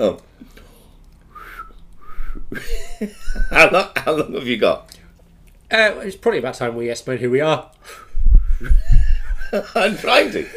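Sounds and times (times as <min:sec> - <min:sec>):
speech: 0:00.0 - 0:00.3, 0:02.5 - 0:05.0, 0:05.7 - 0:08.0, 0:08.6 - 0:10.5
short airy whistled notes: 0:01.3 - 0:02.5.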